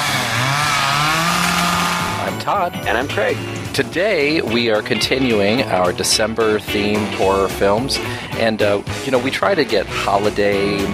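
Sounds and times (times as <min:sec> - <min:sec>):
chainsaw engine revving: 0:00.0 - 0:02.3
speech: 0:02.5 - 0:10.9.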